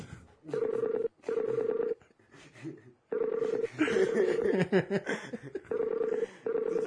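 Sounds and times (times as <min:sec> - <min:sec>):
outgoing phone call ringing tone: 0:00.5 - 0:02.0, 0:03.1 - 0:04.5, 0:05.7 - 0:06.8
people chuckling: 0:02.3 - 0:06.2
speech: 0:04.7 - 0:05.6.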